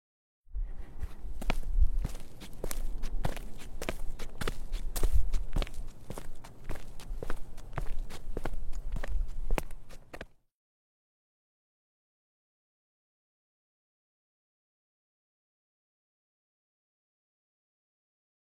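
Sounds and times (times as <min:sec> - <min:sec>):
footsteps on concrete: 0:00.6 - 0:10.4.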